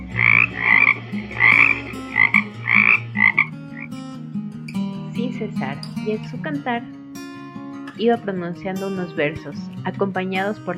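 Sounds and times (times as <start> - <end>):
frog croaking: 0.0 - 4.2
speech: 5.4 - 7.0, 8.0 - 10.7.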